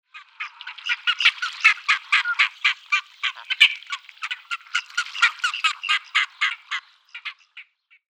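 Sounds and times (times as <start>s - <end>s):
ferruginous duck Aythya nyroca calling: 0.2s - 7.8s.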